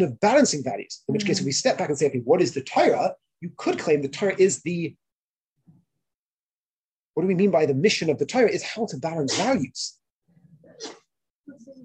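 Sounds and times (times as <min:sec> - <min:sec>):
speech: 0:00.0 - 0:05.0, 0:07.2 - 0:10.0, 0:10.8 - 0:11.8
sneeze: 0:10.7 - 0:11.1.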